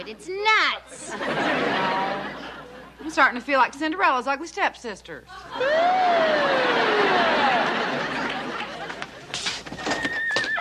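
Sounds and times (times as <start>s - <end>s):
speech: 0.0s - 1.8s, 3.1s - 7.4s
steady hum: 0.0s - 9.8s
laughter: 0.9s - 3.1s, 5.3s - 9.7s
horse whinnying: 9.7s - 10.5s.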